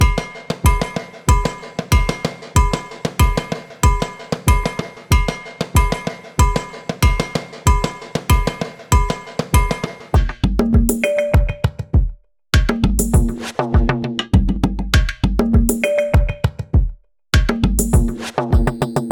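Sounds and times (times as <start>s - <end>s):
percussion loops: 0.0s - 19.0s.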